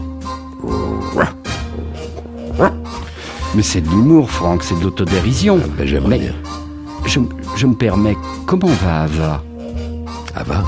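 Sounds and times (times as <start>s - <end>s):
man imitating a dog barking for a household product song: 0.6s - 1.4s, 2.6s - 2.9s
speech: 3.6s - 6.5s, 7.1s - 9.5s, 10.4s - 10.6s.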